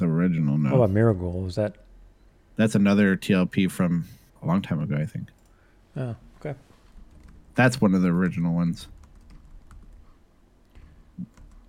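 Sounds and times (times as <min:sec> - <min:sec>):
speech: 0:00.0 - 0:01.9, 0:02.6 - 0:05.4, 0:06.0 - 0:06.7, 0:07.6 - 0:09.0
typing on a computer keyboard: 0:07.1 - 0:07.4, 0:08.8 - 0:10.0, 0:10.7 - 0:11.6.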